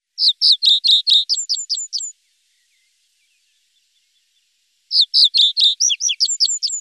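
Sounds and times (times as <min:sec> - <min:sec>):
common reed bunting Emberiza schoeniclus: 0:00.0 - 0:06.7.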